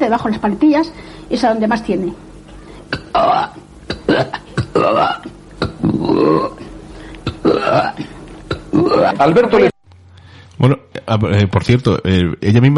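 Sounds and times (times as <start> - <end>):
speech: 0.0 - 2.3, 3.2 - 5.3, 8.8 - 9.7, 10.6 - 12.7
person deliberately burping while touching someone's back: 2.9 - 9.7.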